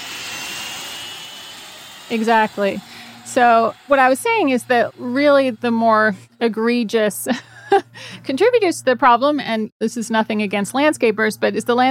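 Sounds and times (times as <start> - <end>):
jet engine roaring: 0.0 - 5.8
speech: 2.1 - 11.8.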